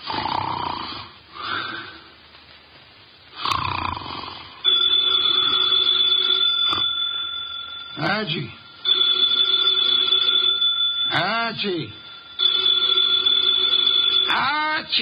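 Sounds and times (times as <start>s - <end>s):
heavy snoring from a man asleep in a chair: 0.0s - 1.8s, 3.4s - 4.6s
telephone ringing in an office: 4.6s - 15.0s
speech: 8.2s - 8.6s, 11.6s - 12.0s.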